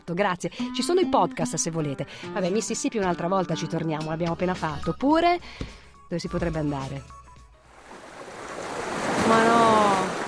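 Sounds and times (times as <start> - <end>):
speech: 0.1 - 7.2, 9.3 - 10.0
sea waves breaking: 7.7 - 10.2.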